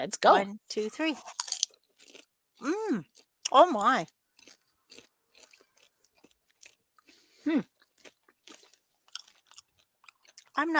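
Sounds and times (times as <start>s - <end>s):
speech: 0.0s - 1.4s, 2.6s - 4.2s, 7.4s - 7.7s, 10.6s - 10.7s
crisp crunching bites and chewing of a cheddar-flavoured pretzel: 1.2s - 10.6s
brief voiced exclamation: 2.6s - 3.0s.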